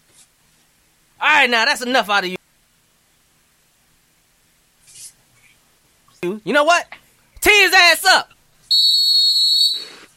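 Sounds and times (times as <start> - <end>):
speech: 1.4 - 2.4, 6.4 - 8.9
shrill whistle blast: 8.7 - 10.1.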